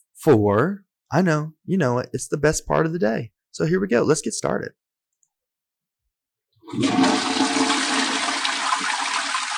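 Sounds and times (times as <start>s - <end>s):
speech: 0.2s - 4.8s, 6.7s - 7.3s
toilet flushing: 6.6s - 9.5s.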